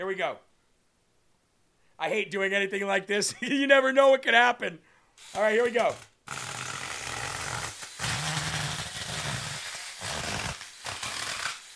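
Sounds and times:
speech: 0.0 - 0.5, 2.0 - 6.5
TacRite battery-powered mini chainsaw cutting wood: 5.2 - 11.7.

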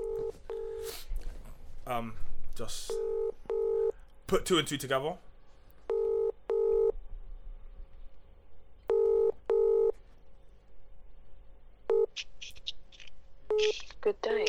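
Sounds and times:
phone ringing with an incoming call: 0.0 - 0.9, 2.9 - 3.9, 5.9 - 7.0, 8.9 - 10.0, 11.9 - 12.2
speech: 1.9 - 3.2, 4.3 - 5.3.

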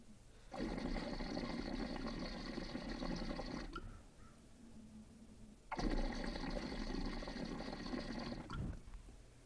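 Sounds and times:
water draining through a 14 millimeter standard glass percolator piece: 0.5 - 3.8, 5.7 - 8.8.

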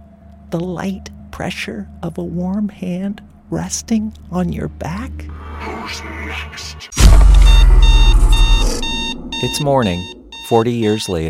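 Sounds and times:
low rumbling hum: 0.0 - 10.4
speech: 0.5 - 8.8, 9.4 - 11.2
electronic alarm clock beeping: 7.0 - 11.2.

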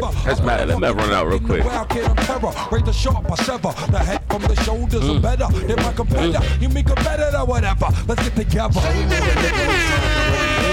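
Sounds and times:
speech: 0.3 - 10.7
loud sustained air horn blast: 8.8 - 10.7.

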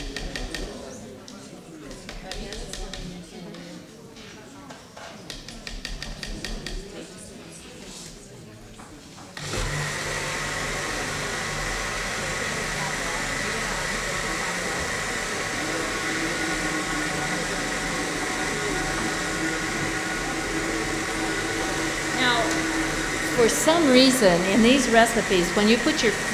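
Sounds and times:
blender motor whirring through a thick mixture: 0.0 - 0.7, 9.4 - 26.3
speech: 23.7 - 26.3.

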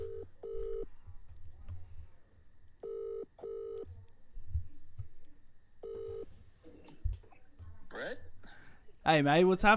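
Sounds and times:
phone call ringing out with a double-burst ring tone: 0.0 - 0.9, 2.8 - 3.9, 5.8 - 6.3
speech: 9.0 - 9.7.

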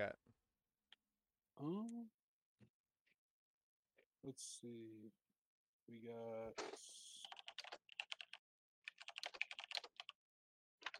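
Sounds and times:
speech: 0.0 - 0.2, 1.6 - 2.7, 4.2 - 5.2, 5.9 - 7.3
typing on a mechanical computer keyboard: 7.2 - 10.1.

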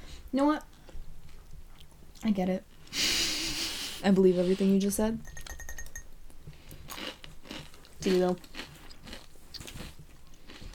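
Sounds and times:
speech: 0.3 - 0.7, 2.2 - 3.0, 4.0 - 5.3, 8.0 - 8.5
person chewing crunchy tortilla chips: 6.8 - 10.7.

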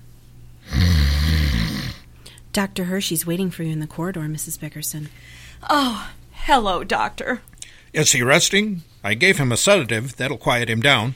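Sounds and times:
man snoring loudly in a hospital: 0.6 - 2.1
speech: 2.6 - 11.1.

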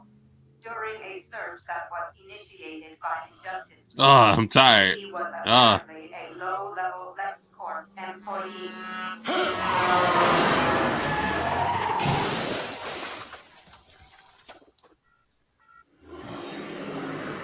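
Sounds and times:
car engine roaring: 0.0 - 2.1, 3.3 - 12.0, 16.0 - 17.4
speech: 0.6 - 7.0
car tires skidding: 6.0 - 13.8, 16.0 - 17.4.

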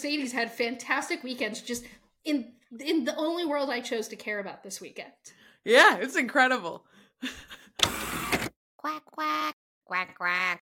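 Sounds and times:
speech: 0.0 - 10.6
person imitating a duck with loud nasal quacks: 8.8 - 10.6.

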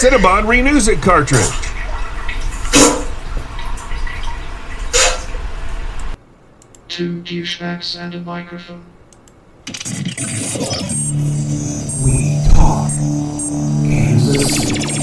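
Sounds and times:
speech: 0.0 - 1.7, 7.0 - 9.0, 9.6 - 14.9
running water: 0.1 - 6.0
water splashing: 1.1 - 5.5.

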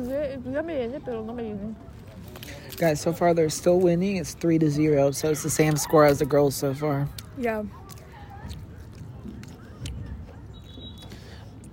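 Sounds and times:
speech: 0.0 - 2.0, 2.7 - 7.8
murmur of voices: 0.0 - 11.7
loud wet crunchy chewing of food: 5.4 - 11.7.

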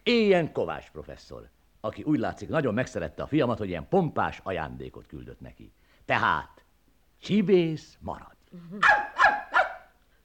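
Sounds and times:
speech: 0.1 - 6.6, 7.2 - 9.2
robot dog barking: 8.8 - 9.9.

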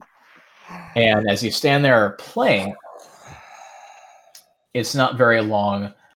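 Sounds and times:
person imitating long deep raspy breathing: 0.6 - 1.4, 2.4 - 4.6
speech: 0.9 - 2.8, 4.7 - 6.0.

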